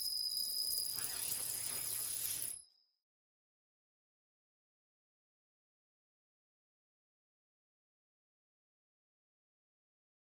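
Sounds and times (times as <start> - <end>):
bugs: 0.6 - 2.5.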